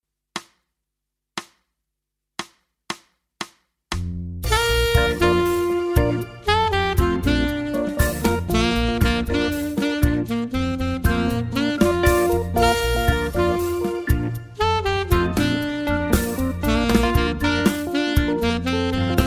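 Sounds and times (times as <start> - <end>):
alto saxophone in E-flat tuning: 4.5 - 19.2.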